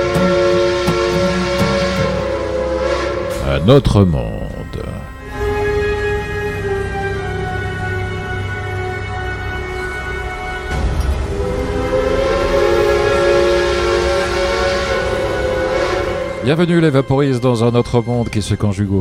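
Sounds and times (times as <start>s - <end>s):
steam train whistle: 0.0s - 3.6s, 5.2s - 16.6s
speech: 3.6s - 4.4s, 16.4s - 19.0s.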